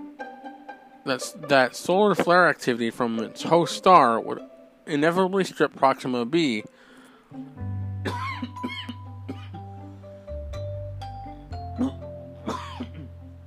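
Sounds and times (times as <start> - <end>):
speech: 1.0 - 8.2
harsh coughing fit: 8.0 - 9.6, 11.8 - 13.1.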